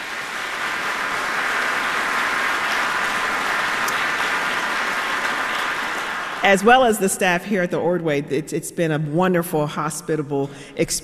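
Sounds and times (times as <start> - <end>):
concert audience applause: 0.0 - 6.8
speech: 6.4 - 11.0.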